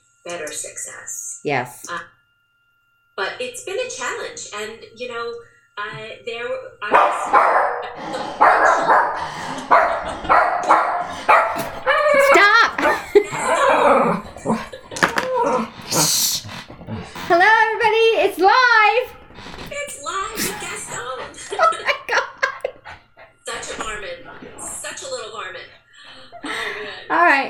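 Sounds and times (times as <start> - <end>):
speech: 0.2 - 2.2, 3.2 - 11.7
dog barking and yelping: 6.9 - 14.7
people laughing: 7.2 - 17.4, 18.8 - 27.4.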